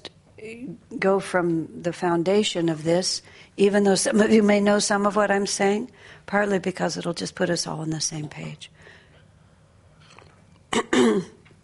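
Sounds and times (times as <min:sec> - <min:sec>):
speech: 0:00.4 - 0:08.8, 0:10.7 - 0:11.4
person with a long-running throat irritation clearing throat: 0:10.7 - 0:11.4.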